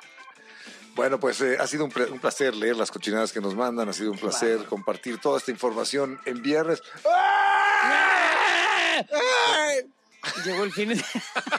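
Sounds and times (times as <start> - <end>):
speech: 1.0 - 8.1, 9.0 - 11.5
loud human scream from a dungeon: 7.0 - 9.8
laughter: 10.2 - 11.5.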